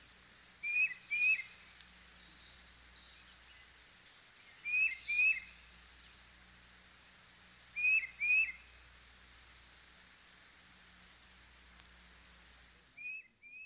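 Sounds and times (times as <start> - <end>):
soft steady hum: 0.0 - 13.6
tufted titmouse singing two-note whistled phrases: 0.1 - 6.1, 7.8 - 8.7.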